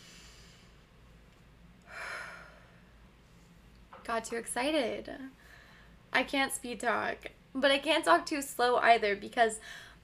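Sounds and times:
breath drawn in through the nose and let out: 0.0s - 0.8s, 1.9s - 3.0s, 5.4s - 6.0s, 9.6s - 10.0s
speech: 4.2s - 5.5s, 6.1s - 9.9s.

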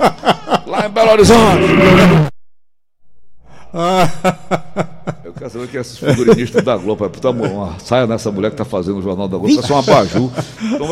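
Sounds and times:
laughter: 0.0s - 1.3s, 3.7s - 8.2s, 9.5s - 10.9s
speech: 0.0s - 2.3s, 3.7s - 4.4s, 5.5s - 10.9s
lion roaring: 1.2s - 2.3s.

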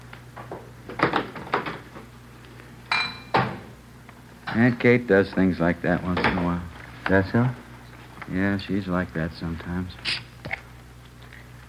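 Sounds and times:
dishes clattering while being cleaned up: 2.9s - 3.6s
speech: 4.6s - 7.6s, 8.2s - 10.3s.

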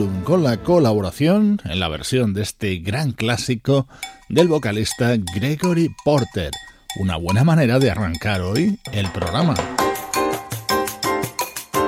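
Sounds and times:
speech: 0.0s - 9.8s
lively percussion groove opening a music track: 4.0s - 11.8s.

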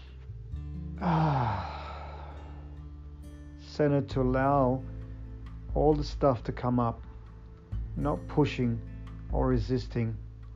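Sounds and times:
speech: 1.0s - 1.6s, 3.8s - 5.0s, 5.8s - 7.1s, 8.0s - 10.2s
deep breath during a calm meditation: 1.0s - 3.1s.

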